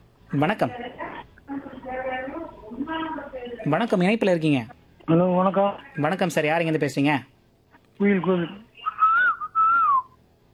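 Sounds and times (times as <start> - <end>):
speech: 0.3 - 7.3, 8.0 - 8.6
voiced hoot imitating a koel: 8.8 - 10.2.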